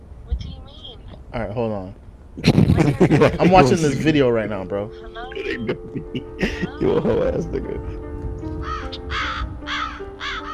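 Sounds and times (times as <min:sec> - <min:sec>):
constant low hum: 0:00.0 - 0:09.7
speech: 0:01.3 - 0:08.0
laughter: 0:02.4 - 0:04.4, 0:05.4 - 0:07.9
crows cawing: 0:08.6 - 0:10.5.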